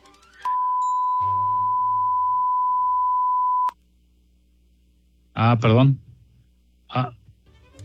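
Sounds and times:
loud pure-tone censor bleep: 0:00.5 - 0:03.8.

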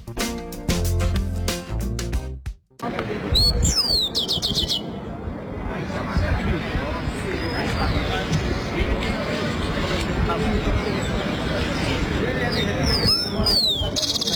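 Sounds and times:
music: 0:00.0 - 0:02.9
small bird singing in Bogotá: 0:03.4 - 0:04.8, 0:12.6 - 0:14.3
steady noisy background: 0:04.8 - 0:14.3.

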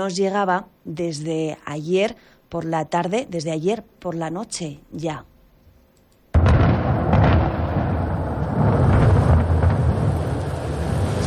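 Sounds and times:
speech: 0:00.0 - 0:05.3
deep rolling thunder in a wildfire zone: 0:06.4 - 0:11.2
dense rain in a wildfire zone: 0:07.7 - 0:11.2.

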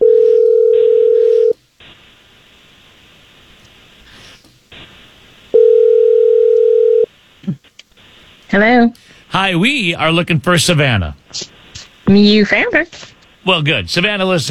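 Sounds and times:
telephone call ringing out: 0:00.0 - 0:01.6, 0:05.6 - 0:07.1
faint telephone line hiss: 0:00.2 - 0:14.4
speech: 0:08.5 - 0:11.5, 0:12.1 - 0:14.4.

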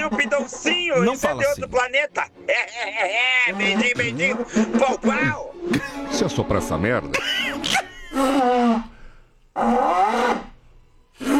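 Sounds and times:
person imitating an elephant's trumpeting call with their voice: 0:00.0 - 0:01.8, 0:03.0 - 0:06.2, 0:07.2 - 0:09.0, 0:09.6 - 0:10.6, 0:11.2 - 0:11.3
laughter: 0:00.0 - 0:08.9
speech: 0:00.5 - 0:08.9, 0:09.6 - 0:10.5.

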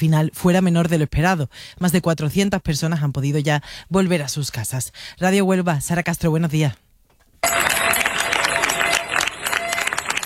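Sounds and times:
speech: 0:00.0 - 0:06.8
residents of Niebla Spain applauding departing Military Emergencies Unit troops: 0:07.4 - 0:10.2.

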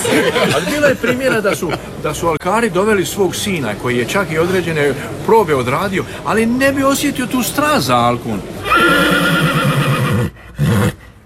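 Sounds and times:
laughter: 0:00.0 - 0:02.0
speech: 0:00.2 - 0:09.2
horse neighing: 0:08.6 - 0:11.0.

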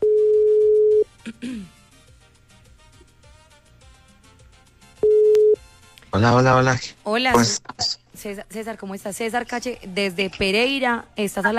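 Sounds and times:
ringback tone on an outgoing phone call: 0:00.0 - 0:01.1, 0:05.0 - 0:05.6
speech: 0:06.2 - 0:11.5.

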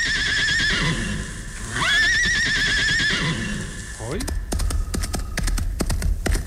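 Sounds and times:
horse whinnying in long quavering calls: 0:00.0 - 0:04.0
sharp horse hoof clops: 0:04.1 - 0:06.4.

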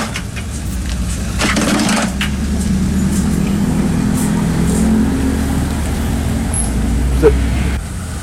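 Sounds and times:
crunching and rattling: 0:00.0 - 0:03.4
vehicle passing on a noisy street: 0:00.2 - 0:08.2
people talking: 0:07.1 - 0:07.6.

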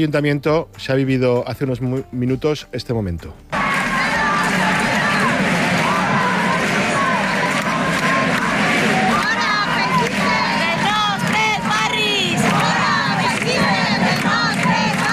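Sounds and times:
speech: 0:00.0 - 0:03.6
large crowd of antifascist protesters shouting and chanting in Plaza del Ayuntamiento, Valencia: 0:03.6 - 0:15.1.

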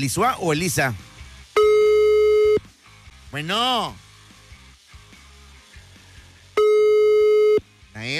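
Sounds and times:
speech: 0:00.0 - 0:01.1, 0:03.3 - 0:04.0, 0:08.0 - 0:08.1
telephone busy signal while dialing a number: 0:01.6 - 0:02.6, 0:06.6 - 0:07.6.

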